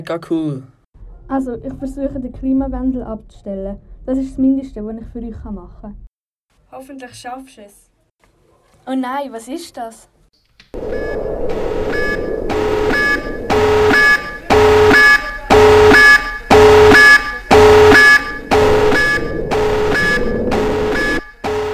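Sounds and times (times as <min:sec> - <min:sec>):
speech: 0:00.0 - 0:00.7, 0:01.3 - 0:06.1, 0:06.7 - 0:07.8, 0:08.8 - 0:10.1
alarm blaring in harsh tonal pulses: 0:10.8 - 0:21.7.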